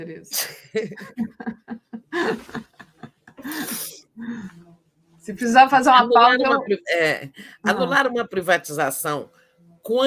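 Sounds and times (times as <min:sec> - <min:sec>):
speech: 0:00.0 - 0:01.6, 0:05.3 - 0:10.0
laughter: 0:00.6 - 0:03.8
person sneezing: 0:03.4 - 0:04.0.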